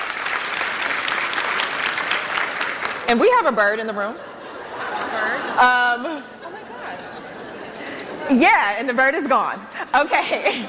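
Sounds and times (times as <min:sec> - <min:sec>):
audience applause: 0:00.0 - 0:03.2
speech: 0:03.1 - 0:06.5, 0:08.2 - 0:10.6
laughter: 0:04.0 - 0:08.2, 0:09.8 - 0:10.6.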